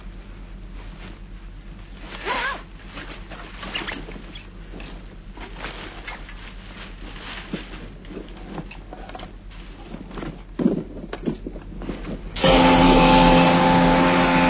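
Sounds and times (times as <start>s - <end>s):
scattered clicks and patter: 2.9s - 12.3s
scooter engine driven by a man, droning buzz: 12.4s - 14.4s.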